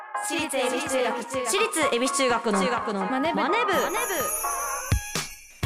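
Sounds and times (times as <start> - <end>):
speech: 0.2 - 4.6
school bell chime ringing: 3.7 - 5.6.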